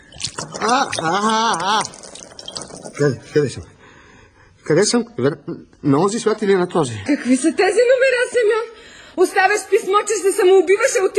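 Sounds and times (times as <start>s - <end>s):
water poured over a man's head: 0.0s - 3.1s
speech: 0.6s - 2.0s, 3.0s - 3.7s, 4.7s - 11.1s.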